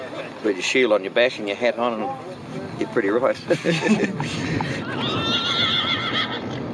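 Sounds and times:
speech: 0:00.4 - 0:05.2
laughter: 0:03.3 - 0:06.6
horse neighing: 0:04.8 - 0:06.6.

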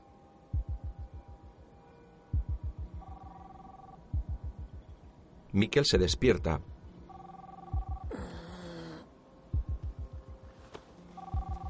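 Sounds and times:
low rhythmic throbbing pulse: 0:00.0 - 0:05.2, 0:06.6 - 0:10.5, 0:11.2 - 0:11.6
mobile phone ringing with a steady electronic ringtone: 0:03.0 - 0:04.0, 0:07.1 - 0:08.1, 0:11.2 - 0:11.6
speech: 0:05.5 - 0:06.7.

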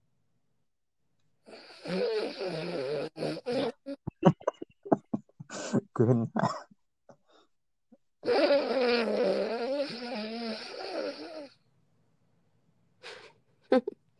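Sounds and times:
person imitating a snore with a nasal rumble: 0:01.5 - 0:04.4, 0:08.2 - 0:11.5
speech: 0:06.0 - 0:06.6.

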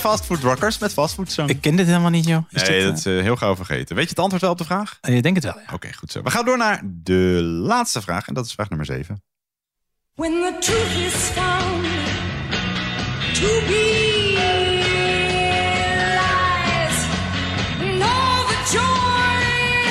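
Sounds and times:
speech: 0:00.0 - 0:09.3, 0:10.2 - 0:12.3, 0:13.4 - 0:14.6
powerful female lead voice belting sung lines: 0:10.2 - 0:12.2, 0:13.4 - 0:17.2, 0:17.8 - 0:19.8
late-sixties rock song with guitars, bass and drums: 0:10.8 - 0:19.8.

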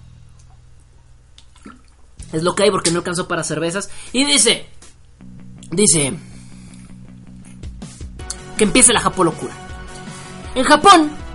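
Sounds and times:
steady low hum: 0:00.0 - 0:08.3
drips of water: 0:00.4 - 0:02.3
person sipping water: 0:01.4 - 0:02.2
gulp-like burst: 0:01.6 - 0:02.0
speech: 0:02.3 - 0:04.8, 0:05.7 - 0:06.3, 0:08.6 - 0:09.6, 0:10.6 - 0:11.2.

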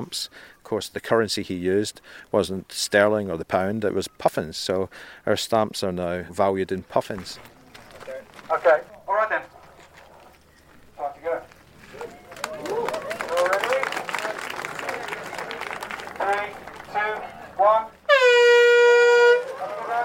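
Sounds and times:
speech: 0:00.0 - 0:07.6, 0:08.4 - 0:09.5
crowd noise and cheering: 0:11.8 - 0:20.0
loud sustained air horn blast starting a race: 0:18.0 - 0:20.0.

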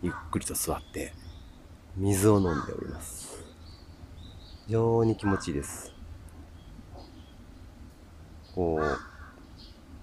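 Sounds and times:
speech: 0:00.0 - 0:01.2, 0:02.0 - 0:03.2, 0:04.7 - 0:05.9, 0:08.6 - 0:09.1
faint brief chirp: 0:00.0 - 0:10.0
loud harsh raspy bird caw in a forest by a ryokan open-air bath in Hokkaido: 0:02.3 - 0:03.5, 0:05.2 - 0:05.9, 0:08.6 - 0:09.6.

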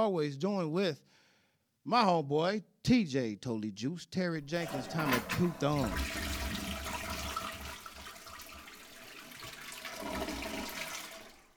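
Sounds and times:
speech: 0:00.0 - 0:01.2, 0:01.8 - 0:06.2
toilet flushing: 0:04.5 - 0:11.5.

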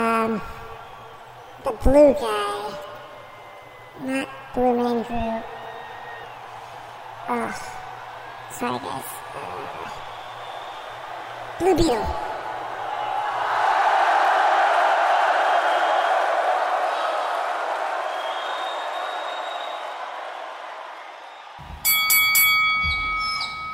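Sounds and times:
large crowd roaring: 0:00.0 - 0:21.9
speech: 0:00.3 - 0:00.6, 0:01.8 - 0:02.8, 0:04.0 - 0:05.6, 0:07.3 - 0:07.8, 0:08.6 - 0:09.8, 0:11.6 - 0:12.3
ring-side bell clanging to start round one: 0:21.7 - 0:23.7.

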